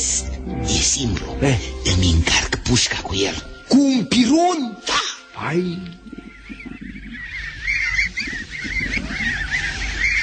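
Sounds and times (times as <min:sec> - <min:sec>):
speech: 0:00.4 - 0:06.2
flock of wild ducks calling as they fly past: 0:04.9 - 0:10.2.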